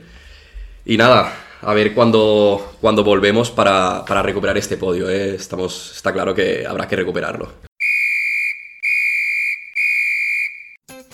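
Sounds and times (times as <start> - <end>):
speech: 0.8 - 7.7
referee's whistle long shrill blasts: 7.8 - 10.8.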